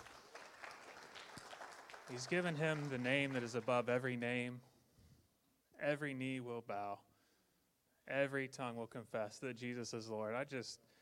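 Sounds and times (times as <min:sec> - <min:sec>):
audience applauding: 0:00.0 - 0:03.9
speech: 0:02.1 - 0:04.7, 0:05.8 - 0:07.1, 0:08.1 - 0:10.9.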